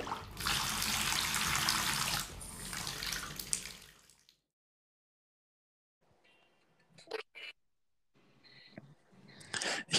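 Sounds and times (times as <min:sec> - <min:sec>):
cold tap water gushing into a bathtub: 0:00.0 - 0:04.5.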